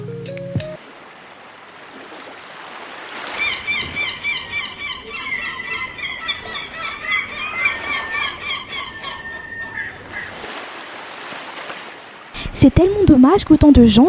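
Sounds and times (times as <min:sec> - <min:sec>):
surf washing on a shore: 0:00.8 - 0:14.0
seagulls calling with harsh squawks on a shore: 0:03.2 - 0:10.6
speech: 0:12.6 - 0:14.0.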